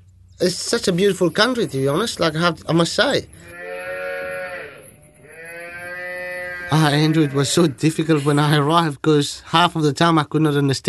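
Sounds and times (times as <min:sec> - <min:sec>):
speech: 0:00.4 - 0:03.7, 0:06.7 - 0:10.8
cow mooing: 0:03.4 - 0:07.8.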